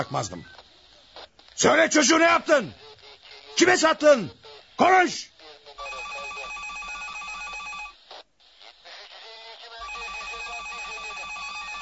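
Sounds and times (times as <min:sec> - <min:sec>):
speech: 0:00.0 - 0:00.6, 0:01.6 - 0:02.8, 0:03.6 - 0:05.3
electronic telephone ringing: 0:05.8 - 0:08.0, 0:09.8 - 0:11.8.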